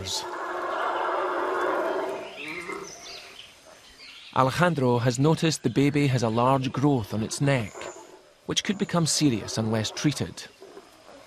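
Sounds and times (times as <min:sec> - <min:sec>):
family of howler monkeys roaring: 0:00.0 - 0:04.0, 0:06.4 - 0:11.2
speech: 0:04.4 - 0:10.6.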